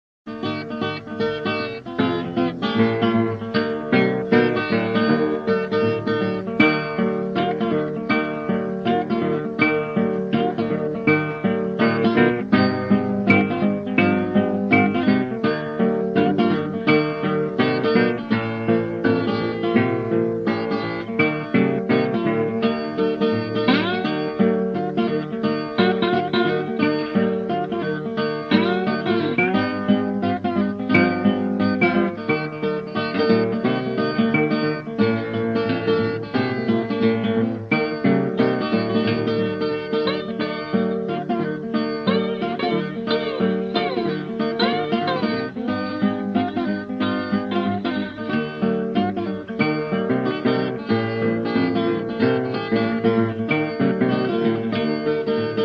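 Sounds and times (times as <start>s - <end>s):
bottleneck slide guitar blues: 0.3s - 55.6s.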